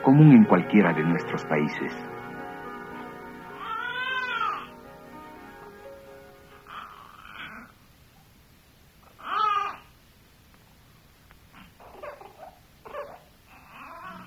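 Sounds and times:
speech: 0.0s - 2.2s
newborn baby crying: 3.5s - 4.8s, 6.5s - 7.8s, 9.1s - 9.9s, 11.8s - 14.2s.

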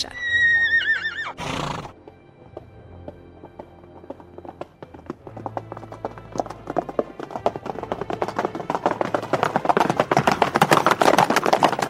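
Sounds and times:
horse whinnying: 0.0s - 2.0s
horse hooves clip-clopping and galloping: 0.6s - 11.8s.

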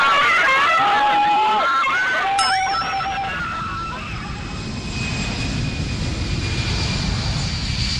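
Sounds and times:
excited voices and shouts: 0.0s - 4.2s
airplane engines roaring during takeoff roll: 0.0s - 7.9s.

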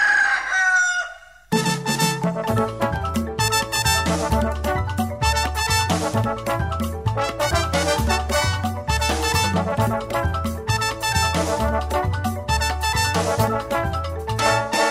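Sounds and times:
rooster crowing: 0.0s - 1.5s
cheerful instrumental music: 1.5s - 14.8s.

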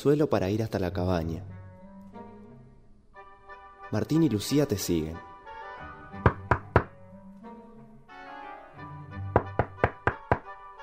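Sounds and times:
speech: 0.0s - 1.6s, 3.9s - 5.3s
firm knocking on a cabin door: 6.2s - 6.9s, 9.4s - 10.5s.

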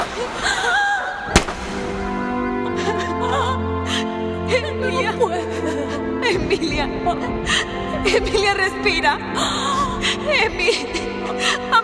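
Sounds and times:
tense tonal score with sustained low tones: 0.1s - 11.8s
single sharp gunshot: 1.3s - 2.1s
speech: 6.5s - 11.8s.

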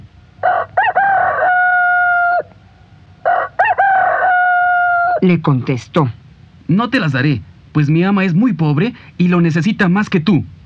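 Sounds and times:
rooster crowing: 0.4s - 5.2s
speech: 5.2s - 10.6s.

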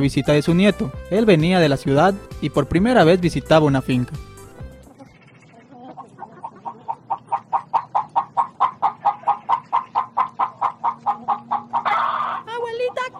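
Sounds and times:
speech: 0.0s - 4.3s
hen clucking: 4.6s - 13.1s.

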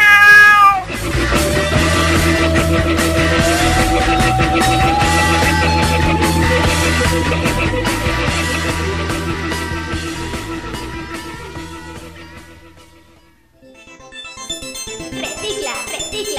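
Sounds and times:
cat meowing: 0.0s - 1.0s, 2.0s - 8.2s
instrumental music: 0.9s - 16.3s.

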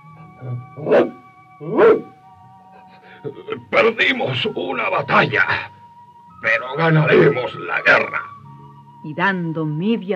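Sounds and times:
faint steady tone: 0.0s - 10.1s
speech: 0.4s - 1.8s, 3.2s - 5.8s, 6.4s - 8.3s, 9.0s - 10.1s
dog barking: 0.8s - 2.2s.

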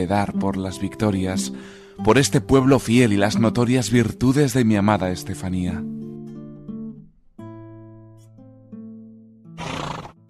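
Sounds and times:
speech: 0.0s - 6.0s
horse neighing: 9.6s - 10.2s.

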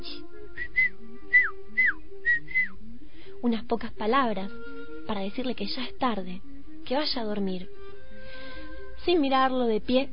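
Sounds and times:
soft human whistle: 0.6s - 3.3s
speech: 3.4s - 7.8s, 9.0s - 10.1s.

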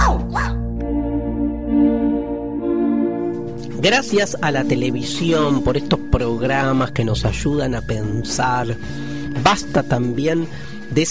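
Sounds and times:
dog barking: 0.0s - 0.6s
sustained musical tones: 0.6s - 11.0s
speech: 3.8s - 11.0s.

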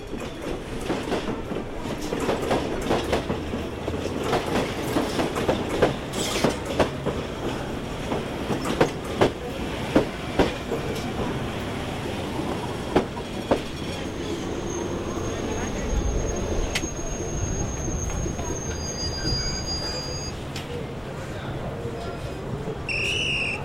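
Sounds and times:
train wheels clickety-clack: 0.0s - 11.4s
train arriving and passing: 0.0s - 23.6s
high-pitched squeal: 14.0s - 20.4s.

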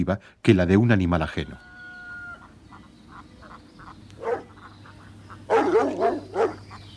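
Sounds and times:
speech: 0.0s - 1.7s
soft regular chirping: 2.4s - 6.9s
dog barking and whimpering: 4.2s - 4.6s, 5.5s - 6.6s.

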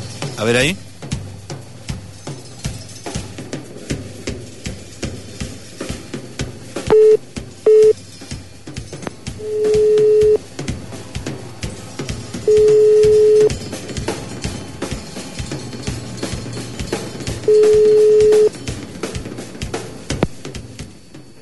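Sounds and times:
speech: 0.4s - 0.9s
constant rhythmic ticking background: 5.0s - 20.9s
telephone busy signal: 6.9s - 8.0s, 9.4s - 10.4s, 12.5s - 13.5s, 17.5s - 18.5s.

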